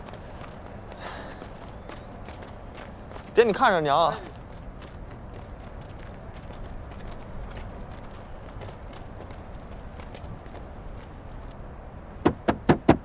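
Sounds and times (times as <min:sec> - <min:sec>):
low steady noise: 0:00.0 - 0:13.0
speech: 0:03.4 - 0:04.3
woman knocking on a door: 0:12.2 - 0:13.0.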